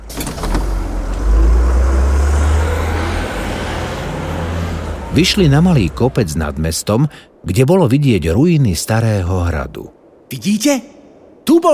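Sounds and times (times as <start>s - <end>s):
bus engine droning while driving: 0.0s - 6.8s
road noise: 0.0s - 10.2s
speech: 5.2s - 11.7s.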